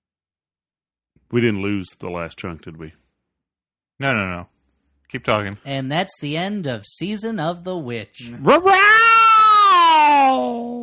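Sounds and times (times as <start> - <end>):
speech: 1.3 - 3.0, 4.0 - 9.1
person imitating a cat meow: 8.4 - 10.8.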